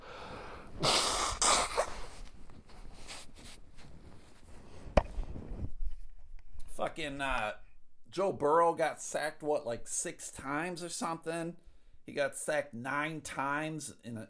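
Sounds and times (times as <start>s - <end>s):
person blowing nose: 0.1s - 2.4s
sniffing: 0.2s - 2.4s
rustling: 1.6s - 6.8s
speech: 7.0s - 14.2s.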